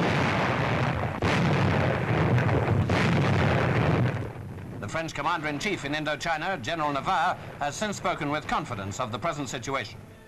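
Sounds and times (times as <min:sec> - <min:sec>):
heavy artillery shelling enemy bases during the Indochina war: 0:00.0 - 0:10.0
speech: 0:04.9 - 0:10.0.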